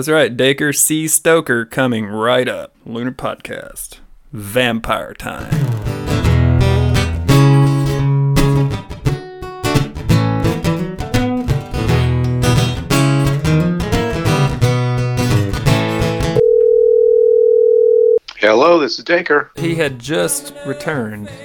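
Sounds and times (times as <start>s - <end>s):
speech: 0.0s - 6.7s, 18.4s - 21.4s
music playing: 5.5s - 16.4s, 19.6s - 21.4s
telephone dial tone: 16.4s - 18.2s.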